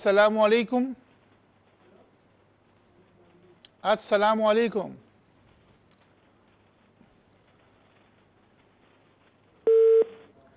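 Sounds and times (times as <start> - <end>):
speech: 0.0 - 1.0, 3.8 - 5.0
telephone line tone after a dropped call: 9.7 - 10.3.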